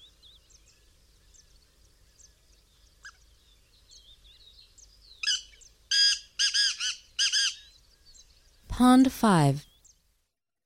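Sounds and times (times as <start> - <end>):
black francolin calling: 5.2 - 7.7
speech: 8.8 - 9.7.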